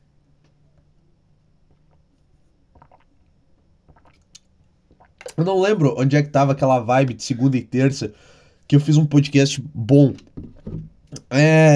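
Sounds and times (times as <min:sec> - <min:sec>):
low hum: 0:00.0 - 0:11.7
person drinking a glass of water, swallowing and gulping: 0:01.7 - 0:05.4
speech: 0:05.4 - 0:10.5, 0:11.3 - 0:11.7.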